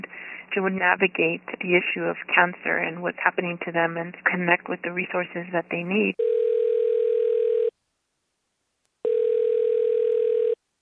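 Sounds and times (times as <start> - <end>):
speech: 0.5 - 6.3
telephone ringing on a foundation help line: 6.1 - 7.7, 9.0 - 10.6.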